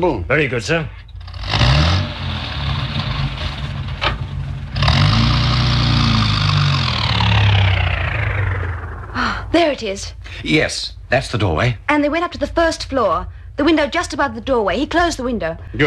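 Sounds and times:
speech: 0.0s - 1.0s, 9.5s - 15.8s
car engine running while reversing in fog: 0.5s - 9.8s.

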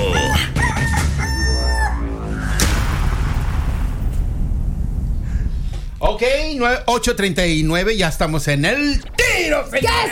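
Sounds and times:
rooster crowing: 0.0s - 2.4s
rumbling explosive roar: 2.0s - 6.6s
speech: 6.2s - 10.0s.

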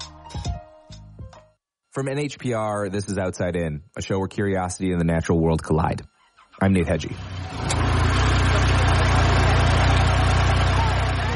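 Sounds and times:
speech: 2.0s - 7.3s
small utility vehicle engine idling: 7.0s - 11.3s.

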